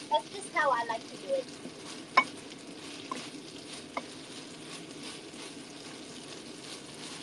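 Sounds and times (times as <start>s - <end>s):
meat and beans sizzling in a pan: 0.0s - 7.2s
soft clicks of stirring meat and beans: 1.4s - 7.2s.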